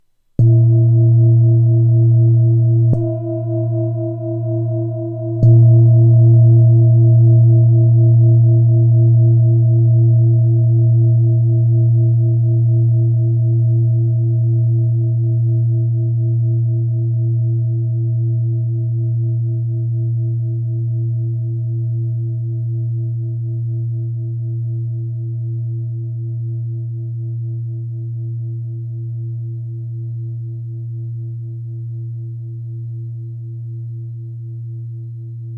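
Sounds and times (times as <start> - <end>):
glossy 23cm Tibetan singing bowl: 0.4 - 24.0.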